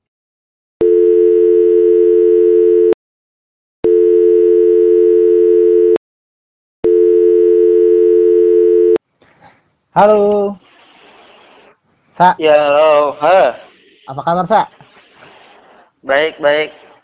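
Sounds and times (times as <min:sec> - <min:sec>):
electronic telephone ringback tones while a call connects: 0:00.8 - 0:03.0, 0:03.9 - 0:06.0, 0:06.8 - 0:09.0
speech: 0:10.0 - 0:10.6, 0:12.2 - 0:14.8, 0:16.0 - 0:17.0.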